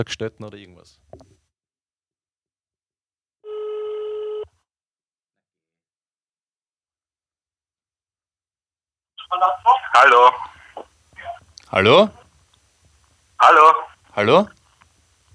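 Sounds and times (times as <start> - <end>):
speech: 0.0 - 1.2, 9.3 - 10.5, 11.7 - 12.2, 13.4 - 14.6
outgoing phone call ringback tone over a phone line: 3.4 - 4.5.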